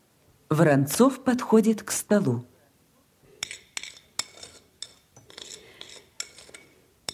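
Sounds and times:
speech: 0.5 - 2.5
utensils clinking and scraping against dishware while laying pancakes on a plate: 3.4 - 7.1.

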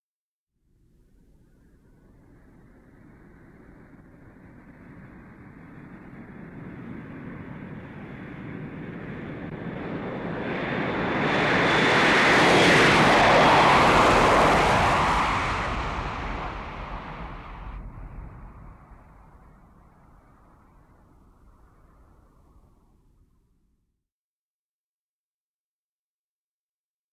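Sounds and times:
707 jet taking off: 1.3 - 22.7.

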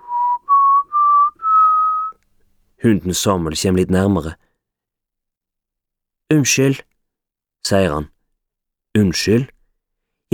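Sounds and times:
man whistling: 0.0 - 2.2
speech: 2.8 - 4.4, 6.3 - 6.9, 7.6 - 8.1, 9.0 - 9.6.

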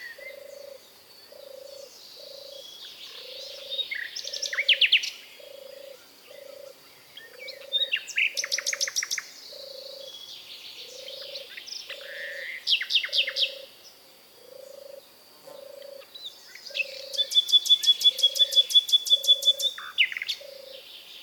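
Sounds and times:
Common nightingale Luscinia megarhynchos song: 0.0 - 21.2.

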